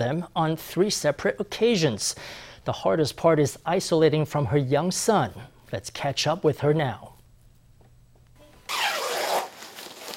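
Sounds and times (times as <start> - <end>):
speech: 0.0 - 7.1
protective suit fabric rustling: 8.7 - 10.1
zip of a protective suit being pulled up: 8.7 - 10.1.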